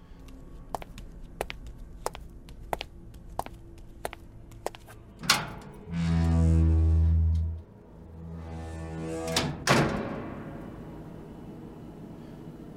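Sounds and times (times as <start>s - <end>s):
low hum: 0.0s - 12.7s
footsteps clicking: 0.1s - 5.1s
heavy freezer room door grinding open: 5.4s - 11.2s.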